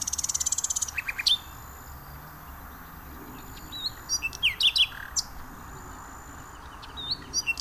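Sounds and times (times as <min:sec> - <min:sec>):
common nightingale singing varied phrases: 0:00.0 - 0:07.5.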